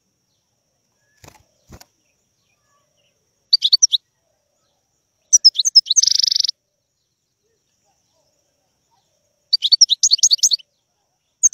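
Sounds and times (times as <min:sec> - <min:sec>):
wild European goldfinch singing with twittering chattering notes and buzzing trill: 0:02.5 - 0:04.0, 0:05.3 - 0:06.5, 0:09.5 - 0:10.6.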